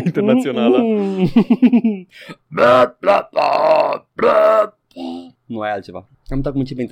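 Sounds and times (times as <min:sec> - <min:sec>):
speech: 0:00.1 - 0:06.9
person burping a tune in croaky bursts: 0:02.4 - 0:05.4.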